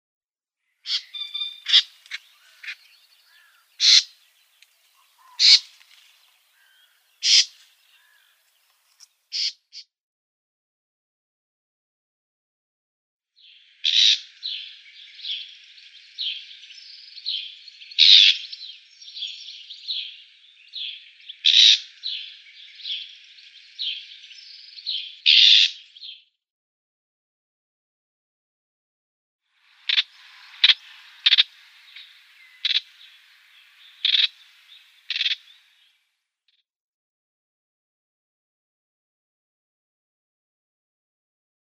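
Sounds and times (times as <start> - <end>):
reed warbler calling: 0.8 - 8.7, 9.3 - 9.6, 13.4 - 26.2, 29.6 - 36.0.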